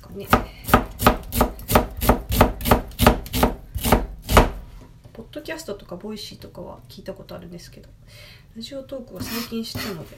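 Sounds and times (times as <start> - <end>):
speech: 0.1 - 0.8, 5.3 - 10.1
knife mincing onion on a cutting board: 0.3 - 4.6.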